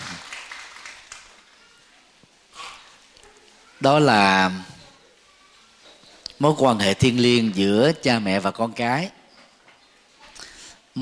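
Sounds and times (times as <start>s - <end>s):
audience applause: 0.0s - 1.6s
speech: 3.8s - 4.7s, 6.4s - 9.2s.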